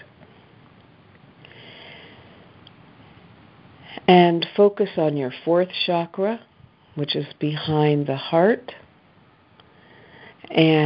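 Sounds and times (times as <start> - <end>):
slow deep breathing during a guided chakra meditation: 1.4 - 2.5, 9.7 - 10.4
speech: 4.0 - 8.8, 10.5 - 10.8.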